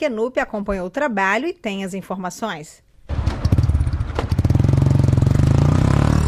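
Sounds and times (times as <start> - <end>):
speech: 0.0 - 2.8
motorcycle engine starting and idling: 3.1 - 5.5.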